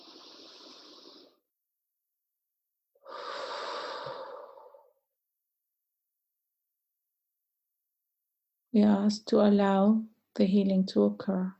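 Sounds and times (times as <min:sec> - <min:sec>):
deep breathing during a guided healing meditation: 0:00.0 - 0:01.4, 0:03.0 - 0:05.0
speech: 0:08.7 - 0:11.5.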